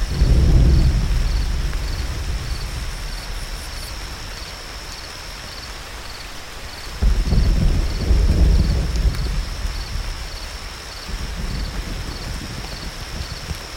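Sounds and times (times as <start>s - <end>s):
deep rolling thunder of a summer thunderstorm: 0.0s - 6.0s, 6.9s - 13.7s
soft wash of rain: 0.0s - 13.7s
steady high cricket chirr: 0.0s - 13.7s.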